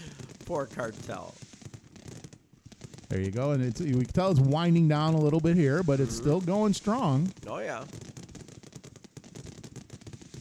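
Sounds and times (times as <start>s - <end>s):
gunshots: 0.0s - 1.4s, 3.1s - 8.2s
speech: 0.5s - 1.5s, 3.1s - 8.1s.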